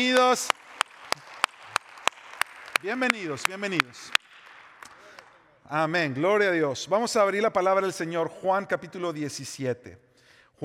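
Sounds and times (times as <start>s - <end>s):
speech: 0.0s - 0.6s, 2.8s - 4.2s, 5.7s - 10.0s
church audience clapping in a steady rhythm: 0.0s - 5.6s.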